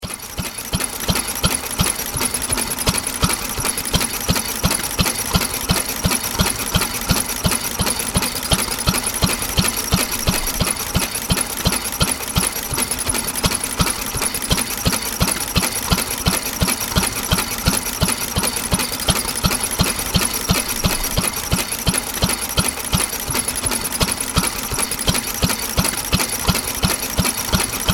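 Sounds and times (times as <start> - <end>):
old vintage stationary engine motor running: 0.0 - 27.9.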